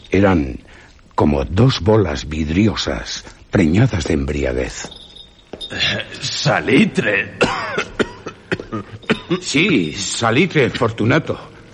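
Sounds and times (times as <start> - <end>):
speech: 0.1 - 0.6, 1.2 - 5.0, 5.6 - 7.9, 8.7 - 11.5
person in a harsh coughing fit: 7.4 - 9.6.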